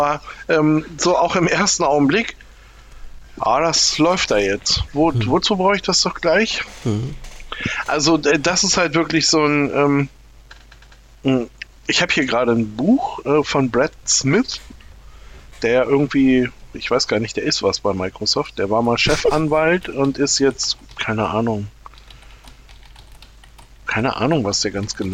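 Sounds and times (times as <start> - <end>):
speech: 0.0 - 2.4, 3.4 - 10.2, 11.2 - 14.8, 15.6 - 21.8, 23.9 - 25.1
low steady hum: 0.0 - 25.1
laughter: 4.7 - 5.4, 19.1 - 19.7
keyboard clicking: 21.9 - 23.7.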